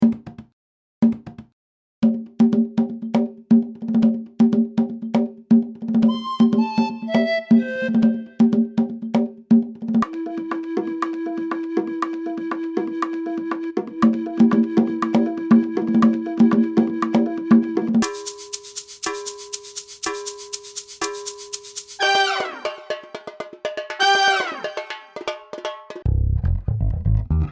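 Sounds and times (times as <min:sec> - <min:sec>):
conga: 0:00.0 - 0:27.5
flute: 0:06.1 - 0:08.6, 0:10.0 - 0:18.2, 0:22.0 - 0:23.0, 0:24.0 - 0:25.1.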